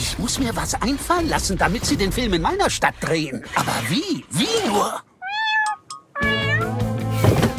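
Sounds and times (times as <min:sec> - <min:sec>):
speech: 0:00.2 - 0:05.1
kitten meowing: 0:05.2 - 0:06.8.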